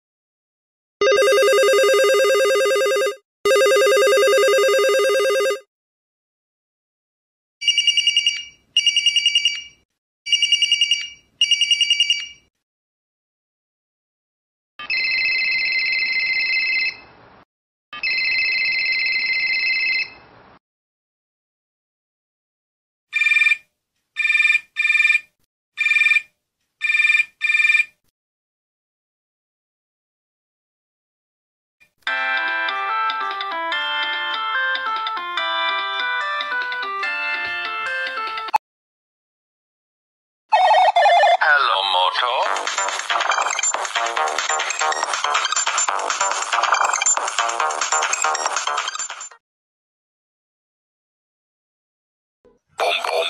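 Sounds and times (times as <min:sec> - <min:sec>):
Motorola phone ringtone: 0:01.0 - 0:05.7, 0:07.6 - 0:12.5, 0:14.8 - 0:17.0, 0:18.0 - 0:20.2, 0:23.2 - 0:28.0, 0:32.1 - 0:38.6, 0:40.5 - 0:41.4, 0:42.2 - 0:49.4.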